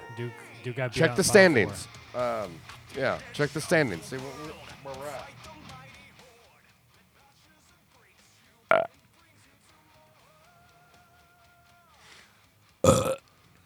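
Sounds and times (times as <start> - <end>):
speech: 0.2 - 5.6
loud belches: 12.8 - 13.2.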